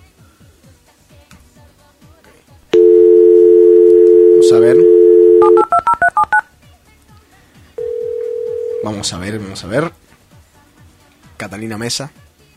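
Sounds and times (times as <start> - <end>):
ringback-style tone: 2.8 - 6.4
telephone dial tone: 2.8 - 6.4, 7.8 - 9.0
touch-tone keypad beeps: 2.8 - 6.4
speech: 4.5 - 5.6, 8.9 - 10.0, 11.4 - 12.3.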